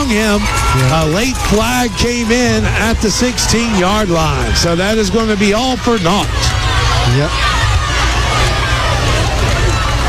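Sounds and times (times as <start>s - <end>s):
large football stadium crowd roaring with jeering and booing: 0.0s - 10.0s
speech: 0.1s - 7.6s.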